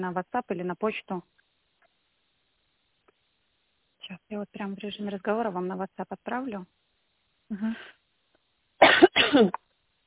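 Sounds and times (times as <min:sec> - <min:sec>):
speech: 0:00.0 - 0:01.5, 0:04.1 - 0:06.8, 0:07.5 - 0:08.0, 0:09.0 - 0:09.6
woman coughing after choking: 0:08.8 - 0:09.6.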